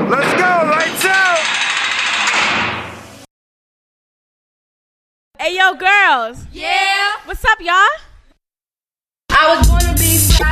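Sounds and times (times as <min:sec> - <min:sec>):
doors sliding shut with a rushing rumble: 0:00.0 - 0:03.3
speech: 0:05.4 - 0:08.0, 0:09.4 - 0:10.5.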